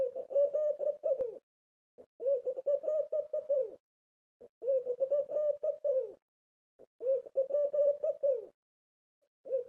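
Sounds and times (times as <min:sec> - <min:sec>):
dove cooing from a window: 0:00.0 - 0:01.4, 0:02.2 - 0:03.8, 0:04.4 - 0:06.2, 0:07.0 - 0:08.6, 0:09.4 - 0:09.6.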